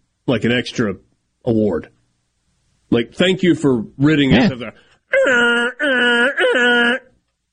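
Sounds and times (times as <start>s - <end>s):
speech: 0.3s - 2.0s, 2.9s - 7.0s
person imitating goose honks: 5.1s - 7.2s.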